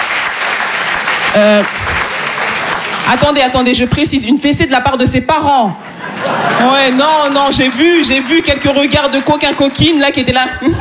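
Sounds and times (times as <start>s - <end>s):
applause from a seated audience in a hall: 0.0s - 3.9s, 5.9s - 10.7s
speech: 1.3s - 1.9s, 3.1s - 10.7s
laughter: 5.8s - 10.7s.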